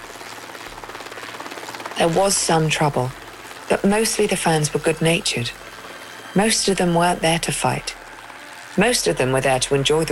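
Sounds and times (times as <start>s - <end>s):
two helicopters' rotors circling above a stadium: 0.0s - 10.1s
speech: 2.0s - 5.6s, 6.3s - 8.0s, 8.8s - 10.1s.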